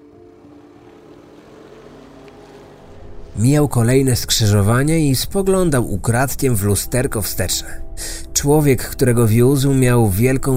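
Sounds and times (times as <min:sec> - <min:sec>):
car engine starting and driving off: 0:00.0 - 0:08.0
speech: 0:03.4 - 0:10.5.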